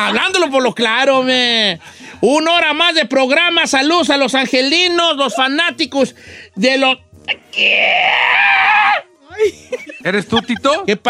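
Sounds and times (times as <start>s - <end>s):
laughter: 0.0s - 0.6s, 9.3s - 11.0s
speech: 0.0s - 11.0s
man screaming from deep in his chest: 7.5s - 9.1s.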